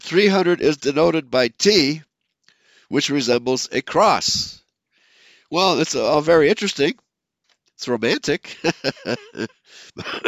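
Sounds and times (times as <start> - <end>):
speech: 0.1 - 2.1, 2.9 - 4.6, 5.5 - 7.0, 7.8 - 10.2
raspy breath intake: 2.4 - 2.9, 4.9 - 5.5, 9.6 - 10.2
laughter: 8.1 - 10.2
person coughing brought on by laughing: 10.0 - 10.2.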